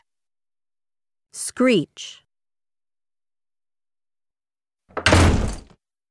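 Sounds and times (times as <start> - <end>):
speech: 1.6 - 2.3
door slamming shut: 4.9 - 5.8.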